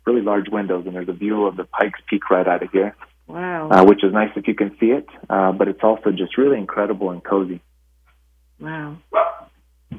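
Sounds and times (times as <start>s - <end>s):
speech: 0.2s - 7.7s, 8.6s - 9.2s
dog barking drawn-out and tonal, almost yowling: 9.1s - 9.6s.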